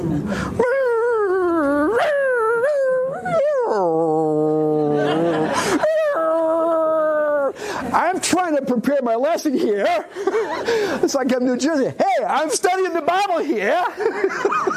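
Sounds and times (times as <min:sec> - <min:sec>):
person imitating a whining dog: 0:00.0 - 0:07.6
laughter: 0:04.4 - 0:07.6, 0:09.5 - 0:11.6, 0:13.5 - 0:14.7
speech: 0:08.7 - 0:14.7.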